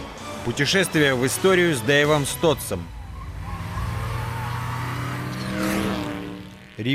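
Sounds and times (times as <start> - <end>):
speech: 0.4 - 3.0
small Smart car engine revving while driving: 1.8 - 6.9.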